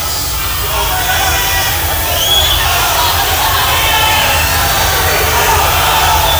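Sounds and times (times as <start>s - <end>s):
hushed rock concert crowd of more than 20,000 murmuring: 0.0s - 6.3s
laughter: 0.0s - 6.3s.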